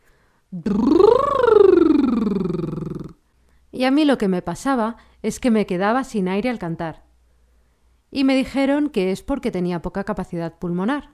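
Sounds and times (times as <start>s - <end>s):
speech: 0.5s - 1.0s, 3.8s - 7.0s, 8.1s - 11.1s
voiced lip trill vocal warm-up exercise: 0.6s - 3.2s.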